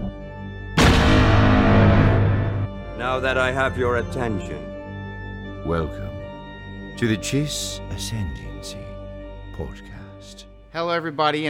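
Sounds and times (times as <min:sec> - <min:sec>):
cannon or gunfire sound effect: 0:00.8 - 0:02.9
low tonal passage: 0:00.8 - 0:03.1
speech: 0:03.0 - 0:04.7, 0:05.6 - 0:06.1, 0:07.0 - 0:08.9, 0:09.6 - 0:11.4.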